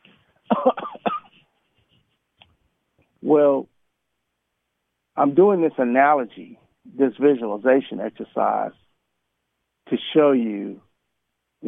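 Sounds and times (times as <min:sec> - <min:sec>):
person coughing harshly: 0:00.5 - 0:01.4
speech: 0:03.3 - 0:03.7, 0:05.2 - 0:08.8, 0:09.9 - 0:10.8.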